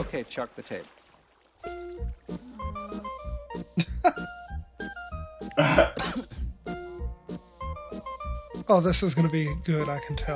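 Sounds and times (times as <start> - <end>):
speech: 0.0 - 1.0, 1.6 - 4.4, 5.6 - 6.3, 8.7 - 10.3
real harsh loud cough: 5.6 - 6.4.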